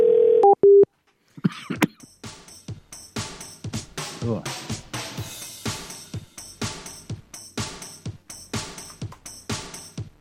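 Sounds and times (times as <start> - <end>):
telephone dial tone: 0.0 - 0.9
speech: 4.3 - 4.6.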